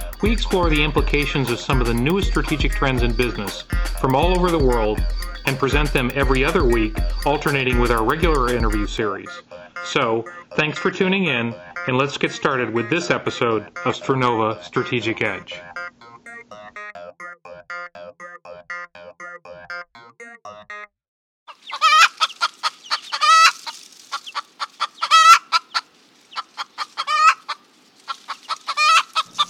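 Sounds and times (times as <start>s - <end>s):
chickens clucking: 0.0s - 16.4s, 21.5s - 29.4s
speech: 0.2s - 15.7s
rooster crowing: 27.0s - 27.5s, 28.5s - 29.4s.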